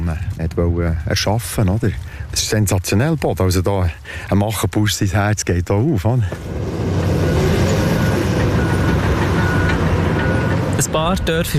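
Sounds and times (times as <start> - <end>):
bulldozer driving back and forth on a vegetable field: 0.0 - 11.5
speech: 0.1 - 6.8, 10.9 - 11.5.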